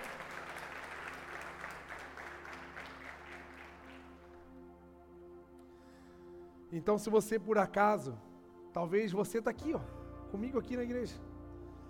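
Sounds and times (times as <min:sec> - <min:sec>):
audience applauding: 0:00.0 - 0:04.5
soft sustained organ or keyboard tone: 0:03.8 - 0:11.8
speech: 0:06.7 - 0:11.3.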